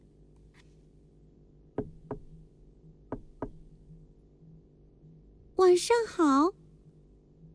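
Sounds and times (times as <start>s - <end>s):
knocking on the door of a hat shop: 1.8s - 2.5s, 3.1s - 3.9s
speech: 5.7s - 6.6s.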